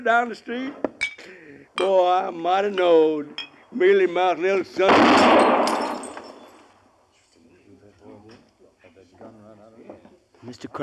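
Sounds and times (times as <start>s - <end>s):
speech: 0.0s - 5.6s, 10.5s - 10.8s
gunshot shooting a glass out of a hand: 4.8s - 6.0s.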